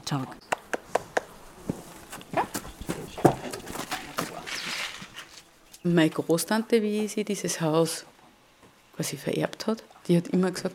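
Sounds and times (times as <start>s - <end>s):
faint noise: 0.0s - 10.7s
speech: 0.1s - 0.4s, 5.8s - 8.1s, 9.0s - 10.7s
ridden horse hooves clip-clopping at a walking pace in the Bohemian Forest: 0.7s - 5.5s.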